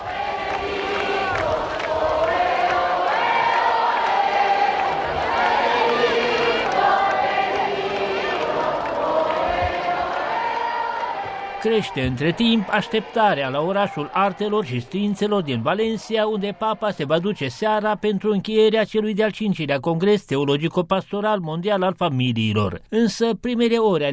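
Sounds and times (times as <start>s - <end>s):
large crowd cheering and shouting enthusiastically: 0.0s - 18.4s
speech: 11.6s - 24.1s.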